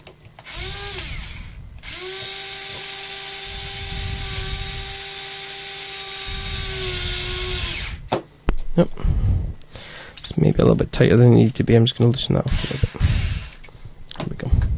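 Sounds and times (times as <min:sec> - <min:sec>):
electric screwdriver driving a screw: 0:00.4 - 0:08.1, 0:12.5 - 0:13.6
speech: 0:08.8 - 0:09.1, 0:10.4 - 0:13.0.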